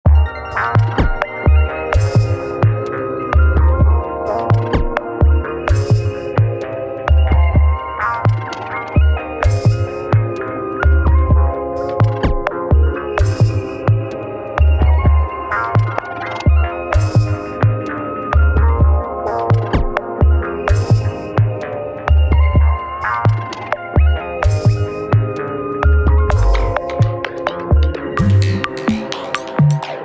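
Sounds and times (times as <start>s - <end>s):
processing wait music: 0.1s - 30.0s.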